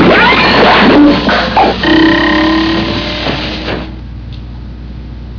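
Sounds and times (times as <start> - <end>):
boing: 0.1 - 3.1.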